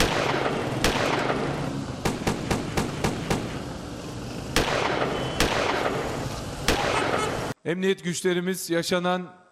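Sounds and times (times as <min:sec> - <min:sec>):
gunshots in armed attack on local association in Küçükçekmece: 0:00.0 - 0:03.7, 0:04.5 - 0:07.5
speech: 0:07.6 - 0:09.4.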